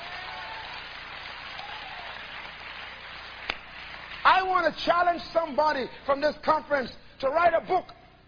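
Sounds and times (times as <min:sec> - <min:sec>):
conference audience applauding during a sermon: 0:00.0 - 0:04.7
speech: 0:04.2 - 0:08.0.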